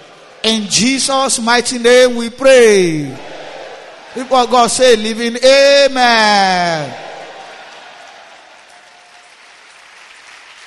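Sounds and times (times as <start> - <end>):
speech: 0.5 - 3.3, 4.2 - 7.0
audience clapping: 6.5 - 10.6.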